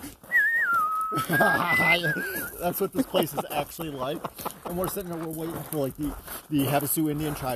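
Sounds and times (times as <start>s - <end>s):
person whistling a Western movie theme: 0.2s - 2.6s
laughter: 1.1s - 5.1s
speech: 1.1s - 7.5s.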